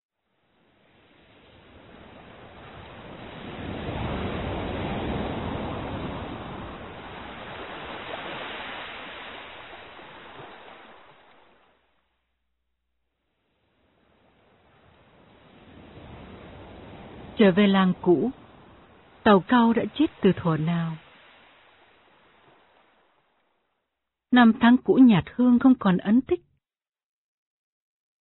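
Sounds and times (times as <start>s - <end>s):
sea surf waves washing onto the shore: 0.3s - 11.9s, 13.6s - 23.6s
speech: 17.4s - 18.4s, 19.2s - 21.0s, 24.3s - 26.5s.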